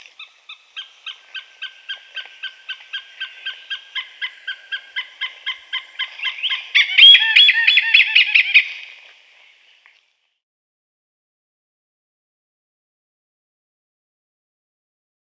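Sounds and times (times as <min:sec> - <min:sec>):
Oriental pied hornbill calling: 0:00.2 - 0:08.9.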